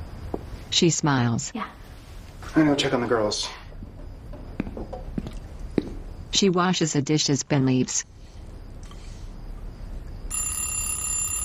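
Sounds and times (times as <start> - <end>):
speech: 0.7 - 1.8, 2.6 - 3.6, 6.4 - 8.1
electronic alarm clock ringing beside a bed: 10.3 - 11.4.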